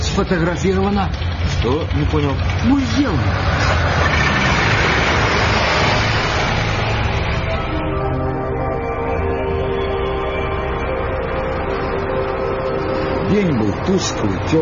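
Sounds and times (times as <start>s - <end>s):
truck engine droning on a rain-soaked road: 0.0s - 14.6s
speech: 0.2s - 3.8s, 13.3s - 14.6s.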